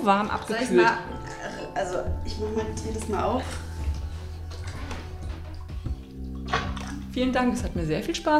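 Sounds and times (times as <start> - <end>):
speech: 0.0 - 3.7, 7.2 - 8.3
bathwater dripping and sloshing in a bathtub as a person gets out: 0.0 - 8.3
low hum: 2.0 - 7.8.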